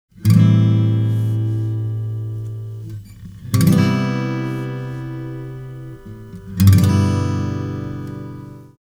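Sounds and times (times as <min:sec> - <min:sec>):
guitar chords: 0:00.2 - 0:08.8.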